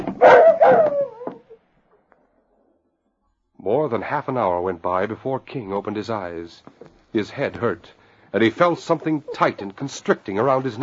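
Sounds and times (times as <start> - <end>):
dog whimpering: 0.2 - 1.6
speech: 3.9 - 10.8.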